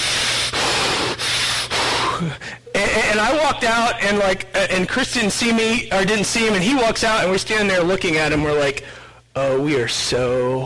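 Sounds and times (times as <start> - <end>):
person imitating heavy breathing of a muscular man in a security uniform: 0.0 - 2.7
speech: 2.2 - 10.6.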